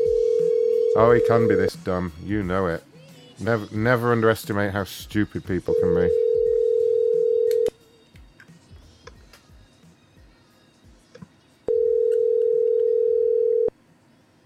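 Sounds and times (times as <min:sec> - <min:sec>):
steady electronic tone of a landline telephone call: 0:00.0 - 0:01.6, 0:05.7 - 0:07.7, 0:11.7 - 0:13.8
speech: 0:01.0 - 0:06.2.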